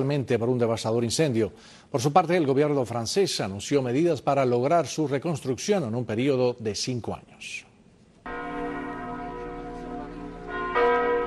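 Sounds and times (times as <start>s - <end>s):
speech: 0.0s - 7.7s
large cathedral church bells ringing: 8.3s - 11.2s.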